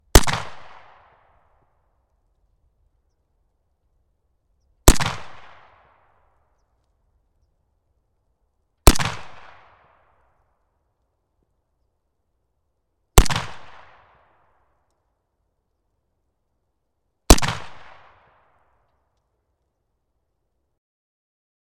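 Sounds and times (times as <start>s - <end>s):
AK47 rifle firing in a big open area: 0.1s - 1.1s, 4.9s - 5.8s, 8.8s - 9.8s, 13.2s - 14.1s, 17.3s - 18.2s.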